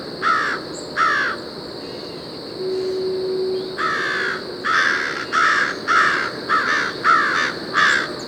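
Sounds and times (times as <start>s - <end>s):
constant insect buzz: 0.0s - 8.2s
steady hum: 0.0s - 8.2s
American crows giving raspy mobbing caws at a raccoon in Rhode Island: 0.2s - 1.4s, 3.8s - 8.2s.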